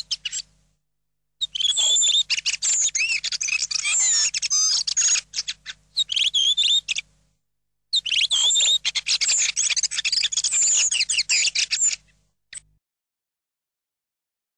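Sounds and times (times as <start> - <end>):
Redwing Tordo Sassello song with squeaky chattering notes and thin whistles: 0.0 - 0.6, 1.4 - 7.2, 7.9 - 12.7.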